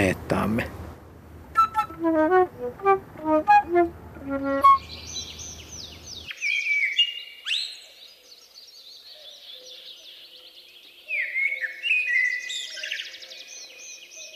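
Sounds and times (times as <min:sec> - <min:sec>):
speech: 0:00.0 - 0:00.8, 0:02.0 - 0:05.0
repeated melodic tones: 0:01.6 - 0:05.7
birdsong: 0:01.6 - 0:14.3.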